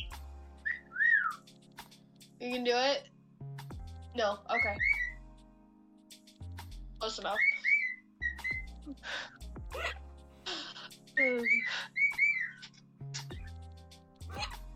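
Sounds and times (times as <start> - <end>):
pet bird whistling with chirpy squeaks: 0.0 - 1.5, 4.5 - 5.2, 7.2 - 8.8, 11.2 - 13.5
speech: 2.4 - 3.2, 4.2 - 5.0, 7.0 - 7.5, 8.9 - 9.9, 11.2 - 12.0.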